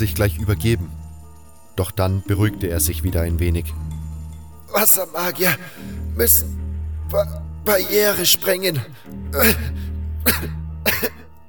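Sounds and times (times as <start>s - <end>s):
speech: 0.0s - 1.0s, 1.8s - 4.0s, 4.7s - 11.2s
man coughing with a strong hoarse croaking cough: 9.4s - 11.4s.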